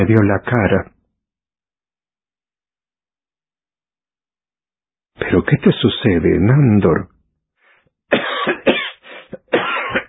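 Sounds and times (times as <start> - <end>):
speech: 0.0 - 0.9, 5.3 - 7.1
person coughing hard in a rough fit: 8.1 - 10.0.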